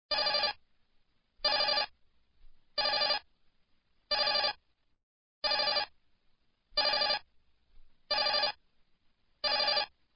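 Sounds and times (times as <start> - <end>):
digital phone ring: 0.1 - 0.6, 1.4 - 1.9, 2.8 - 3.2, 4.1 - 4.6, 5.4 - 5.9, 6.8 - 7.2, 8.1 - 8.6, 9.4 - 9.9.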